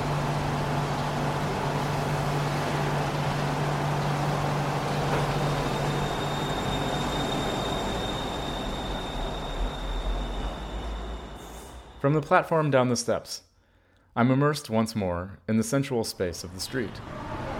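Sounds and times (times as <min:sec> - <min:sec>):
SkyTrain rumbling as it pulls away from station: 0:00.0 - 0:12.7
faint high whine of train: 0:00.0 - 0:13.3
speech: 0:12.0 - 0:13.5, 0:14.2 - 0:17.3.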